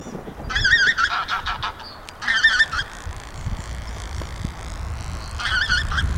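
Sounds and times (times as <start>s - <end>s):
tundra bean goose calling: 0.5s - 4.2s, 5.2s - 6.1s.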